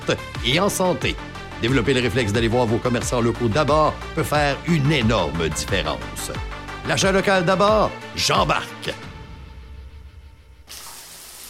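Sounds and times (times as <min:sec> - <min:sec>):
speech: 0:00.1 - 0:09.1
shower water spraying: 0:10.7 - 0:11.4.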